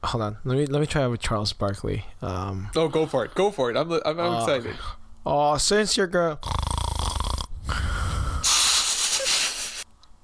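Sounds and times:
speech: 0.0s - 6.7s
person snorting in imitation of snoring: 6.4s - 9.8s.

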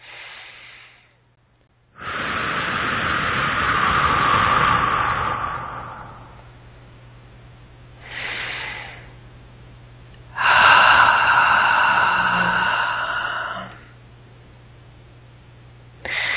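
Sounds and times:
deep breath during a guided meditation: 0.0s - 1.2s, 2.0s - 6.6s, 8.0s - 9.2s, 10.3s - 14.0s, 16.0s - 16.3s.

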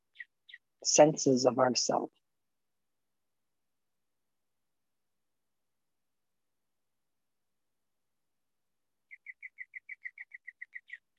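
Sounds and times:
speech: 0.8s - 2.2s
bird calling in clear whistled notes: 9.1s - 11.1s.

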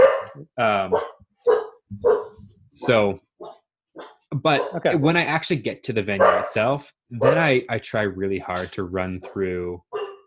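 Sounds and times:
dog barking: 0.0s - 5.0s, 6.2s - 7.5s, 9.2s - 10.2s
speech: 0.4s - 2.2s, 2.8s - 3.3s, 4.3s - 10.0s.

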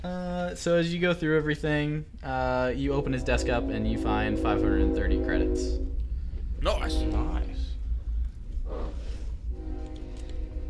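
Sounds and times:
speech: 0.0s - 6.0s, 6.6s - 7.4s
train rumbling past: 2.4s - 10.6s
train horn blast: 2.9s - 7.9s, 8.7s - 10.6s.

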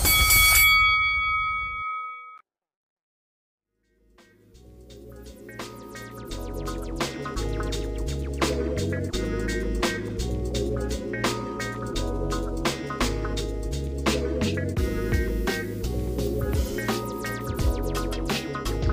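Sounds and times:
loud bright metallic bell strike: 0.0s - 2.4s
music: 3.8s - 18.9s.

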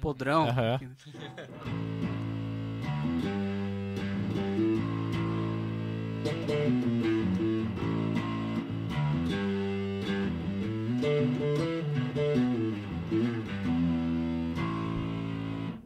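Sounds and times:
speech: 0.0s - 2.2s, 3.0s - 3.7s, 6.2s - 7.9s
laughter: 0.5s - 1.8s
electric guitar through a fuzz pedal playing thick buzzy chords: 1.6s - 15.8s.

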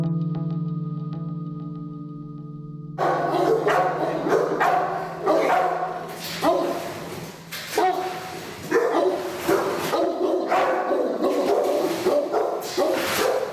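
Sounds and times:
steady droning musical tone: 0.1s - 8.7s
seized dog barking aggressively in a cage: 3.0s - 13.5s.

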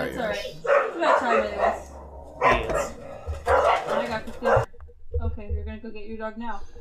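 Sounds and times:
voices talking: 0.0s - 4.7s
dog barking: 0.6s - 4.7s.

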